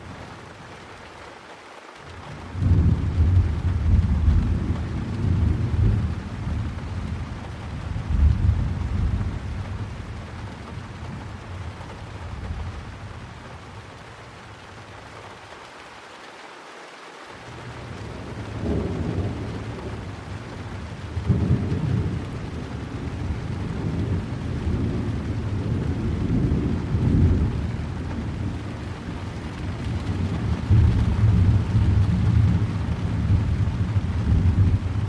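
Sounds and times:
steady hiss of rain: 0.0s - 35.0s
rolling thunder: 2.5s - 11.4s, 17.6s - 35.0s.

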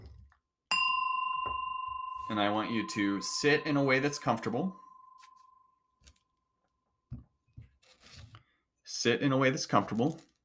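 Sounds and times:
meditation bell struck and ringing: 0.7s - 6.4s
speech: 2.3s - 4.8s, 9.0s - 10.3s.

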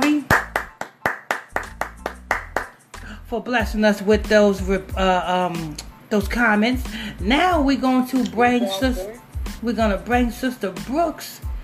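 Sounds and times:
sharp hand claps: 0.0s - 2.8s
speech: 3.3s - 11.4s.

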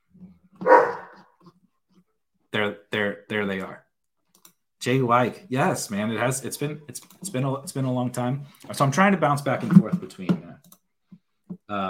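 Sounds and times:
dog barking: 0.6s - 1.2s
speech: 3.4s - 3.8s, 4.8s - 10.4s.

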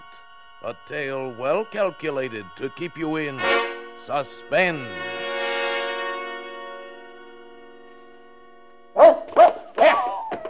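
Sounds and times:
sustained musical chord: 0.0s - 9.1s
speech: 0.6s - 5.2s
dog barking: 9.0s - 10.4s.

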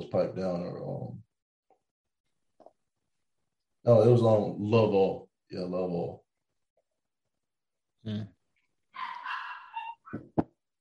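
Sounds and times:
speech: 0.1s - 1.2s, 3.8s - 6.2s, 8.0s - 8.4s
dog yowling: 9.0s - 10.1s.

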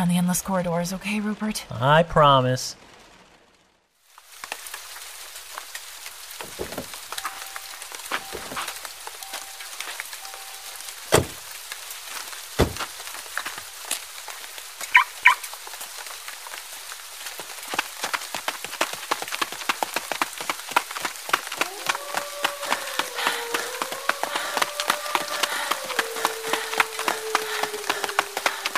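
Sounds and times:
speech: 0.0s - 2.9s
rain pattering on a hard surface: 0.0s - 28.7s.

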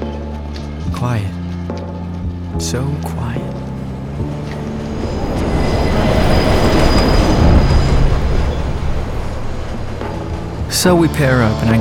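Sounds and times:
speech: 0.9s - 1.8s, 2.5s - 3.6s, 10.7s - 11.7s
subway train rumbling along the tracks heard on board: 3.6s - 11.7s
faint high metallic whine of subway train: 3.8s - 11.7s.

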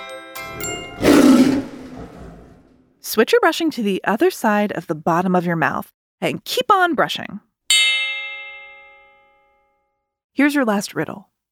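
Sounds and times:
bright chime-like tones: 0.0s - 2.0s, 7.7s - 9.7s
tiger roaring: 0.5s - 2.8s
speech: 3.0s - 7.5s, 10.4s - 11.3s.

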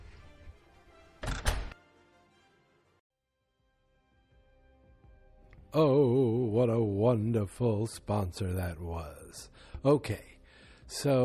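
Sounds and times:
door swinging shut with a thud: 1.2s - 1.8s
speech: 5.7s - 10.3s, 10.9s - 11.2s.

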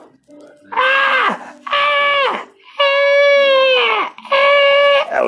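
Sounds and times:
person imitating a baby screaming: 0.7s - 5.1s.

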